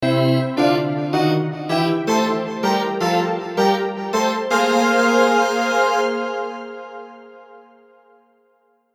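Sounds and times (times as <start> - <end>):
train melody: 0.0 - 6.8.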